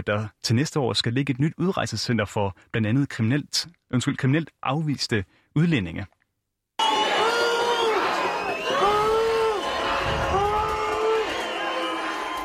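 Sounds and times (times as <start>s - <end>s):
speech: 0.0s - 6.2s
large crowd of local residents booing and shouting in protest: 6.8s - 12.4s.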